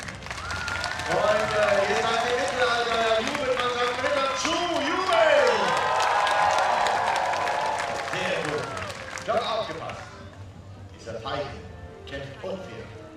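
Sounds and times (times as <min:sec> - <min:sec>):
large audience clapping and cheering: 0:00.0 - 0:09.9
speech: 0:01.1 - 0:03.4.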